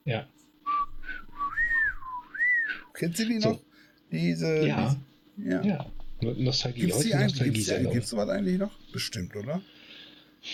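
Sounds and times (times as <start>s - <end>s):
speech: 0.0s - 0.4s, 3.0s - 9.8s
toy whistle lollipop piping: 0.7s - 2.8s.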